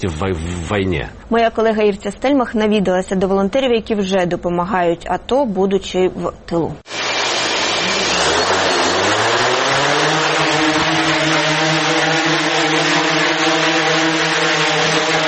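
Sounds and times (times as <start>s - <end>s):
speech: 0.0s - 7.0s
small civilian drone motors whirring indoors in an office: 6.9s - 15.2s.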